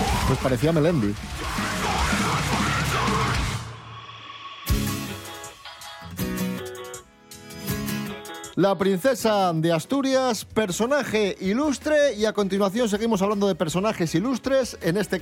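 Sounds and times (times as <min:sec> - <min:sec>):
speech: 0:00.3 - 0:01.6, 0:08.6 - 0:15.2
loud raspy heavy-metal-style scream: 0:01.2 - 0:05.1.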